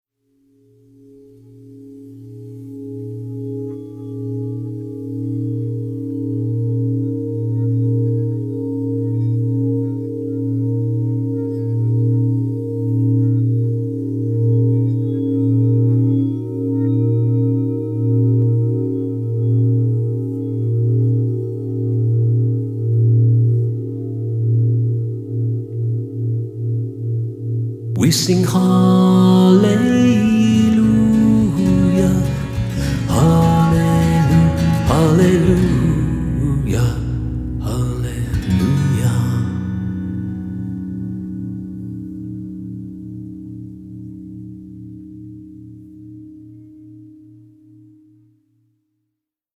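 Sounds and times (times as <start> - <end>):
singing bowls: 0.4 - 48.6.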